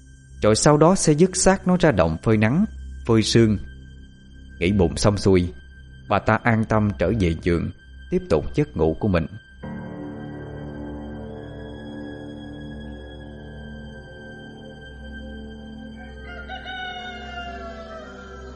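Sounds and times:
low droning background: 0.0s - 16.2s
speech: 0.4s - 3.7s, 4.6s - 9.4s
roosters crowing in a village before dawn: 15.9s - 18.5s.

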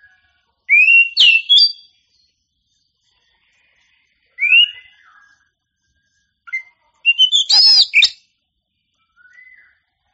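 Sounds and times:
Oriental magpie-robin whistled song phrase: 0.7s - 1.9s, 4.4s - 5.4s, 6.5s - 8.2s, 9.1s - 9.8s.

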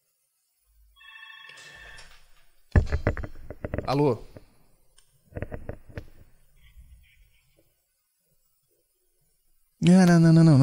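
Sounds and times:
telephone bell ringing: 1.0s - 2.0s
speech: 3.9s - 4.3s, 10.2s - 10.6s.

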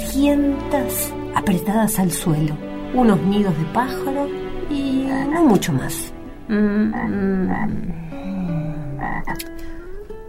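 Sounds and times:
speech: 0.2s - 8.1s, 9.1s - 9.7s
toad croaking: 5.0s - 5.9s, 6.5s - 9.6s.

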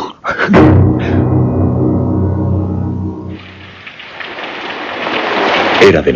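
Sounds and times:
low drone: 0.5s - 4.0s
rain falling at night over a marsh: 3.5s - 5.8s
speech: 5.8s - 6.1s.

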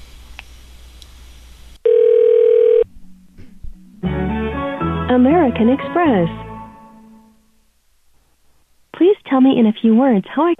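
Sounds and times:
telephone dial tone: 1.9s - 2.8s
tonal sound: 2.6s - 7.6s
speech: 5.2s - 6.4s, 9.4s - 10.5s.

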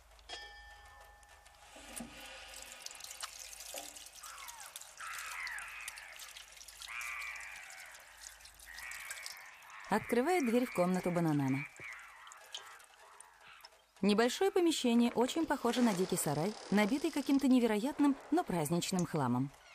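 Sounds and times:
water running from a tap into a sink: 1.7s - 13.7s
speech: 9.9s - 11.7s, 14.0s - 19.6s.

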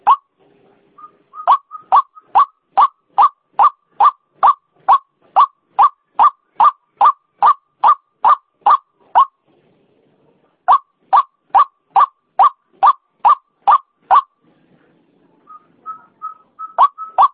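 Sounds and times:
female white-breasted waterhen call: 1.4s - 9.3s, 10.7s - 14.3s.

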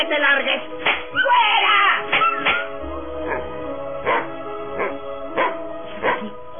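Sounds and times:
speech: 0.0s - 1.6s
dirty stray dog barking: 3.3s - 6.3s.

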